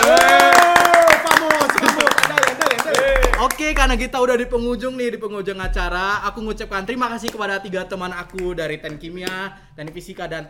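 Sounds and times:
small group clapping hands: 0.0 - 4.0, 7.1 - 10.4
speech: 3.8 - 10.4.

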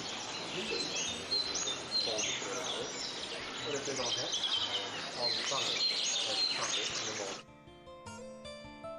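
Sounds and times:
dense outdoor noise: 0.0 - 7.4
nightingale singing on a mountain on the Aegean coast above Ephesus, Turkey: 0.0 - 7.4.

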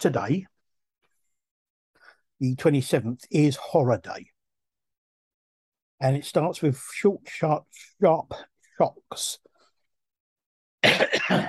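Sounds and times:
speech: 0.0 - 0.5, 2.4 - 4.3, 6.0 - 9.5, 10.9 - 11.4
loud throaty cough: 10.8 - 11.4.

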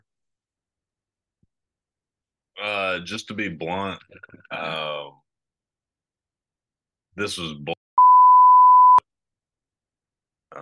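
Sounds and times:
speech: 2.6 - 5.2, 7.2 - 7.8
high-pitched censor beep covering a swear word: 8.0 - 9.0.

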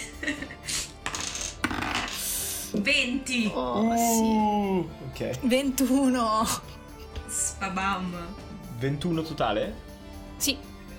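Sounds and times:
dice rolled for initiative in a tabletop role-playing game: 1.0 - 2.2
speech: 2.8 - 6.7, 7.6 - 10.7.

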